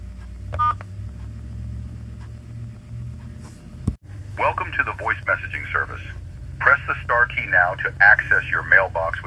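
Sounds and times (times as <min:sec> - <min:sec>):
low steady hum: 0:00.0 - 0:09.2
touch-tone keypad dialing a phone number: 0:00.6 - 0:00.8
speech: 0:04.4 - 0:09.2
voice-like sound on the phone line: 0:04.4 - 0:09.2.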